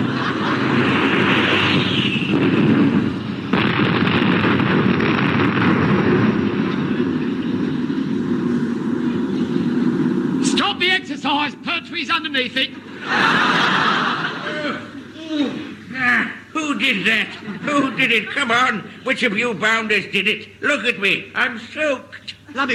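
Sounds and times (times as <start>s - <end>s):
laughter: 0.0s - 1.2s, 12.7s - 15.8s, 16.6s - 19.6s
aircraft engines roaring as planes pass overhead: 0.0s - 16.6s
speech: 12.2s - 13.4s, 16.9s - 22.7s.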